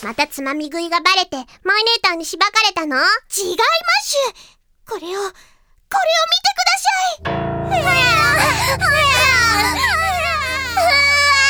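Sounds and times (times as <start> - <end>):
speech: 0.0 - 10.2, 10.8 - 11.4
infants crying: 7.8 - 11.4.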